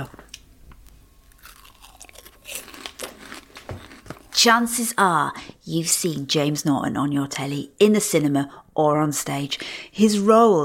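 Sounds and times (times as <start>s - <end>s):
snacks dipped in spicy tomato sauce being bitten and chewed: 1.2s - 4.4s
speech: 4.4s - 10.6s.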